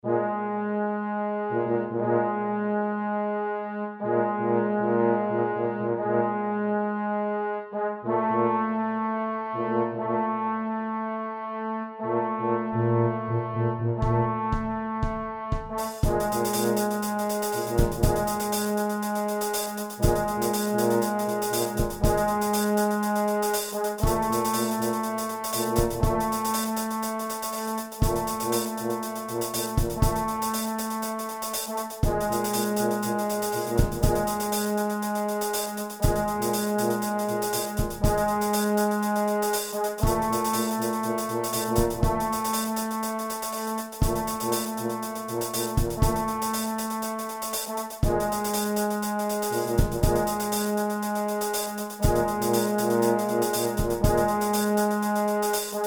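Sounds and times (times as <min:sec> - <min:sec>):
trombone: 0:00.0 - 0:03.3, 0:04.0 - 0:55.8
tuba: 0:00.0 - 0:55.8
drum kit: 0:14.5 - 0:55.8.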